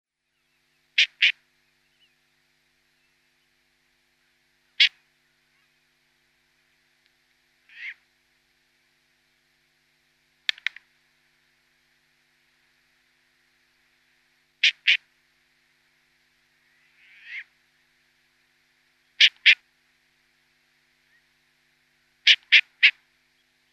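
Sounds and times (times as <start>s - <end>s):
Short-eared Owl downy young calling: 1.0s - 2.1s, 4.7s - 5.0s, 7.7s - 8.0s, 14.6s - 15.0s, 16.7s - 17.5s, 19.1s - 19.6s, 22.2s - 23.7s.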